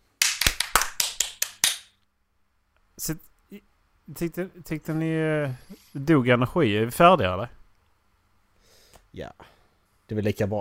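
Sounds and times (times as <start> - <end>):
hands clapping in applause: 0.2 - 2.0
speech: 3.0 - 7.6, 9.2 - 10.6.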